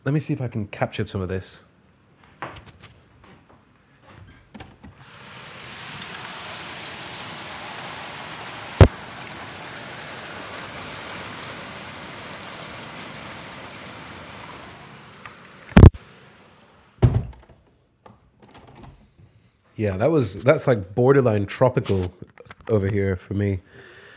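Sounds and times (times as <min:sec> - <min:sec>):
speech: 0:00.0 - 0:01.7, 0:19.8 - 0:23.9
heavy near-hail rain pounding on a high-rise building ceiling: 0:05.0 - 0:17.0
sharp loud thunks: 0:17.0 - 0:17.4.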